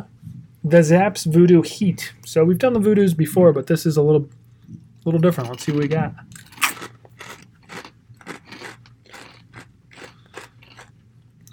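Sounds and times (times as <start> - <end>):
speech: 0.0 - 4.4, 5.0 - 6.5
loud crunching of thick kettle-style potato chips: 5.2 - 11.5.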